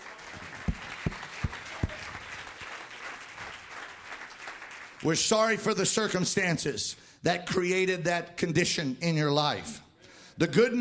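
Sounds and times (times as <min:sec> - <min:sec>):
church audience applauding: 0:00.0 - 0:05.0
speech: 0:05.0 - 0:09.8, 0:10.4 - 0:10.8.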